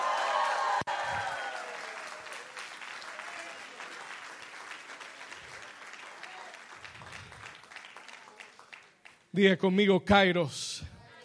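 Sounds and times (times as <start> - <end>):
large audience cheering and shouting in victory: 0.0 - 2.4
large audience applause: 0.0 - 9.3
speech: 9.4 - 10.8.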